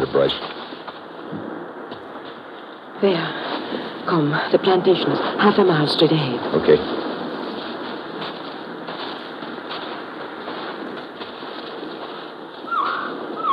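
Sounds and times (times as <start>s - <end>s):
speech: 0.0s - 0.6s, 3.0s - 7.1s
steady hiss of night ambience: 0.0s - 13.5s
whistling bird calls at night: 12.6s - 13.5s.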